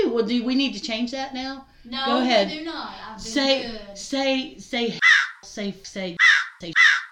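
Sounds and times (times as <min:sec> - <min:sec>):
speech: 0:00.2 - 0:06.9
crow caw sound effect used to bleep out a word: 0:05.0 - 0:05.4, 0:06.2 - 0:07.1.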